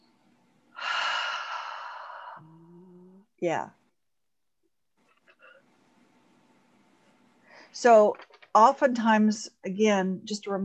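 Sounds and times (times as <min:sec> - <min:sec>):
deep breath inhale during a guided calming moment: 0:00.8 - 0:02.7
speech: 0:03.4 - 0:03.8, 0:07.8 - 0:10.6.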